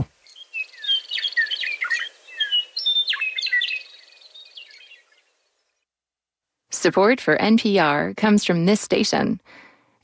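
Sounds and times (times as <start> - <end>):
bird song with whistled chirps and trills: 0.2 - 5.7
speech: 6.8 - 10.0.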